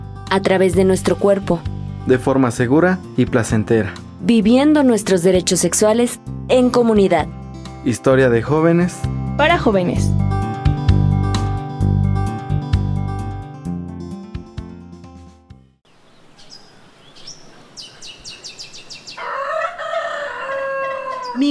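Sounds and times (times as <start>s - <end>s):
music: 0.0s - 15.8s
speech: 0.3s - 10.2s
birds calling over outdoor ambience: 15.9s - 21.4s
rooster crowing loudly: 19.1s - 21.4s
softer clucks and chirps: 19.1s - 21.4s.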